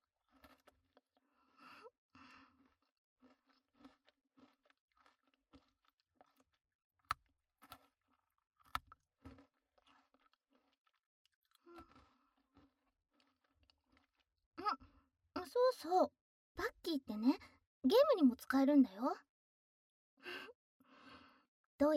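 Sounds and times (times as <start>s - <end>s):
crisp snack being bitten and chewed: 0.0s - 14.9s
speech: 15.6s - 16.2s, 16.9s - 19.3s, 21.8s - 21.9s.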